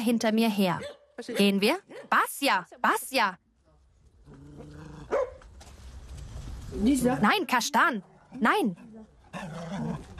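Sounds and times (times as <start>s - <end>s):
speech: 0.0s - 3.4s, 6.7s - 10.1s
dog barking: 0.8s - 2.2s, 5.1s - 5.4s.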